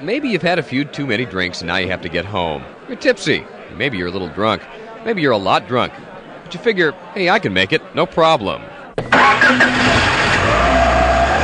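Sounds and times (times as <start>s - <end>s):
speech: 0.0s - 10.2s
car engine starting and idling: 9.0s - 11.4s.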